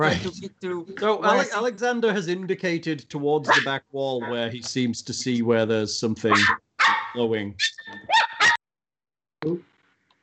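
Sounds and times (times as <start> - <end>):
speech: 0.0 - 8.2, 9.4 - 9.7
small dog barking: 3.5 - 4.4, 6.3 - 8.6.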